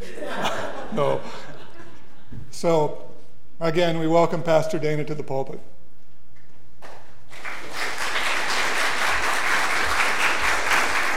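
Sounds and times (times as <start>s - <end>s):
laughter: 0.0s - 2.4s
speech: 0.9s - 1.5s, 2.6s - 3.0s, 3.6s - 5.8s
large audience applause: 7.3s - 11.1s.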